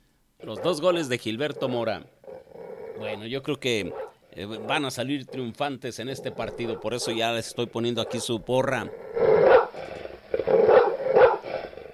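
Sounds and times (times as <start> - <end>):
speech: 0.4 - 2.2, 3.0 - 9.1
dog barking loudly: 3.8 - 4.8, 6.2 - 8.4, 9.4 - 9.8, 10.5 - 11.5.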